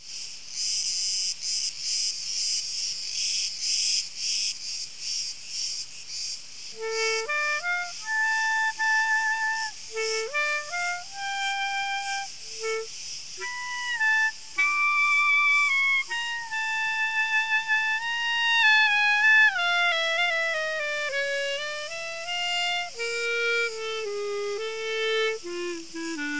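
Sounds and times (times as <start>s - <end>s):
cricket song as rapid pulsing high buzz: 5.5s - 26.3s
steady whistled tones stepping up and down in pitch: 6.8s - 26.3s.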